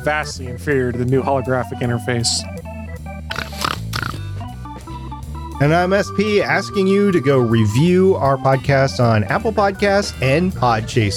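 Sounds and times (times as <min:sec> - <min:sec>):
speech: 0:00.0 - 0:02.7, 0:05.6 - 0:11.1
person snorting like a pig: 0:03.3 - 0:04.4.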